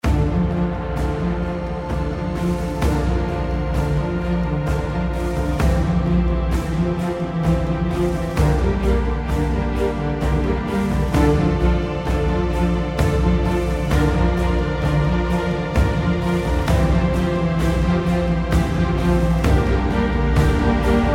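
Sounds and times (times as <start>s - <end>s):
introduction music: 0.0s - 21.1s.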